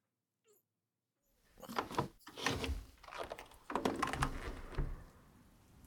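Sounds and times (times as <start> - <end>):
window being cracked open with clunks and rattles: 1.7 - 5.2.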